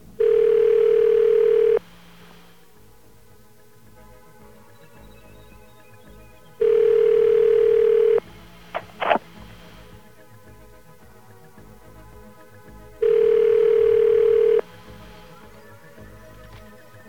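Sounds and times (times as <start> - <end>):
telephone ringback tone on a call to a toll station in the United States: 0.2 - 1.8, 6.6 - 8.2, 13.0 - 14.7.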